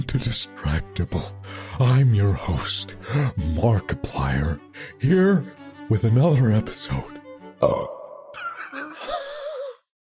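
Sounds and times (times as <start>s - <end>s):
speech: 0.1s - 8.0s
person burping after drinking sparkling water: 7.6s - 9.0s
laughter: 8.4s - 9.6s.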